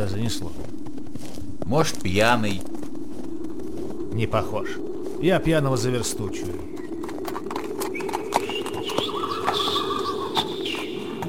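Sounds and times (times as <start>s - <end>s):
speech: 0.0s - 2.8s, 4.2s - 6.8s
faint birdsong: 0.0s - 11.2s
horse-drawn cab passing at a walk: 0.0s - 11.2s
bird cooing: 2.2s - 11.2s.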